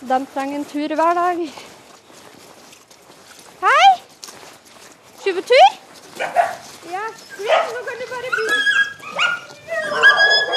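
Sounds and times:
speech: 0.0 - 1.8, 5.2 - 10.5
high-pitched puppy yips and whimpers: 6.2 - 10.5.

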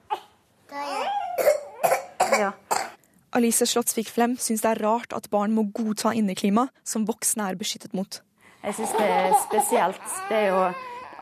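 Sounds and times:
child coughing: 0.1 - 3.0
speech: 2.4 - 2.6, 3.4 - 11.2.

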